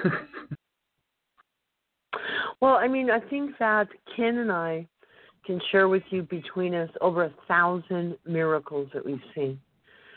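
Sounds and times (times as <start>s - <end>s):
coughing and throat clearing: 0.0s - 0.6s
speech: 2.6s - 9.7s.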